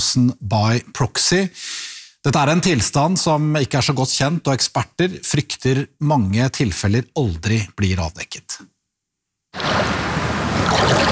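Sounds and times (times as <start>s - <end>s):
speech: 0.0s - 8.7s
cold water washing and swirling against a person's feet: 9.6s - 11.1s.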